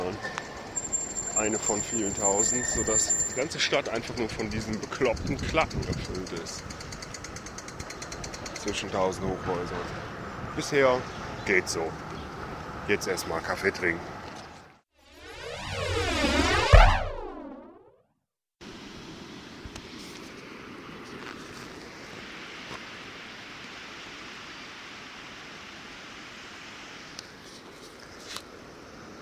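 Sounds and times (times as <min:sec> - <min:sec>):
sweeping electronic tone: 0:00.8 - 0:03.6, 0:15.0 - 0:17.9
speech: 0:01.4 - 0:06.9, 0:08.6 - 0:10.0, 0:10.6 - 0:12.1, 0:12.9 - 0:14.1.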